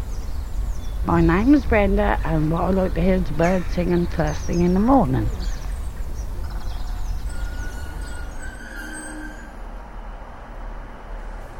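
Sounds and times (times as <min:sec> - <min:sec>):
train arriving at a historic town on a river: 0:00.0 - 0:11.5
speech: 0:01.0 - 0:05.5
thin squealing tones of an arriving train: 0:02.4 - 0:09.7.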